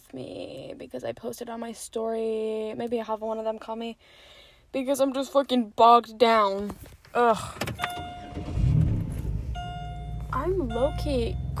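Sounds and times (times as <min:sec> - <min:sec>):
speech: 0:00.1 - 0:07.8, 0:10.3 - 0:11.5
car engine cranking and starting to idle: 0:07.5 - 0:11.5.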